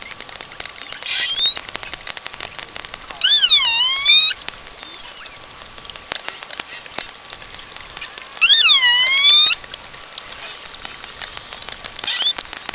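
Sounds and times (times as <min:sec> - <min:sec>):
Pilot whale dense continuous clicking: 0:00.0 - 0:12.7
Pilot whale harmonic whistles: 0:00.6 - 0:01.6, 0:03.2 - 0:05.4, 0:08.4 - 0:09.6, 0:12.0 - 0:12.7.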